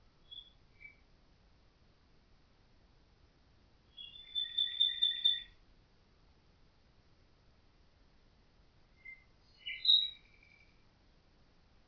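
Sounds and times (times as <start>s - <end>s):
Common nightingale song rattling trill: 4.0s - 5.6s, 9.0s - 10.8s.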